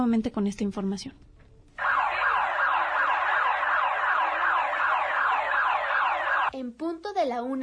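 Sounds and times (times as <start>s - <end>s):
speech: 0.0s - 1.3s, 6.6s - 7.6s
seismic alert electronic alarm siren wailing: 1.8s - 6.5s.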